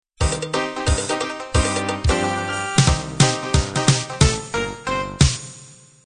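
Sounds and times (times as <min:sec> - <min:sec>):
dixieland jazz intro: 0:00.3 - 0:04.6.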